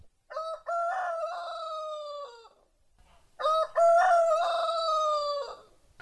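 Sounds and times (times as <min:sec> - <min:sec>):
rooster crowing: 0:00.3 - 0:02.6, 0:03.4 - 0:05.7.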